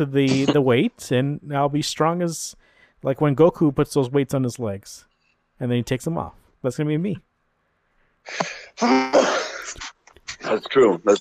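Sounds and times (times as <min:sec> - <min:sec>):
speech: 0:00.0 - 0:07.3, 0:08.2 - 0:11.2
person sneezing: 0:08.3 - 0:10.0.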